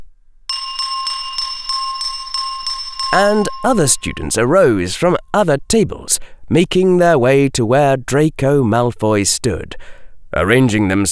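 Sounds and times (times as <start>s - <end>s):
spoon tapping a water glass: 0.5s - 4.9s
speech: 3.1s - 11.0s.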